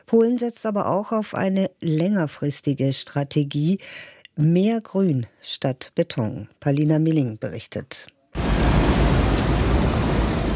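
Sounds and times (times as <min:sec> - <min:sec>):
speech: 0:00.1 - 0:08.2
sprinkler system spraying fine water mist: 0:08.4 - 0:10.5.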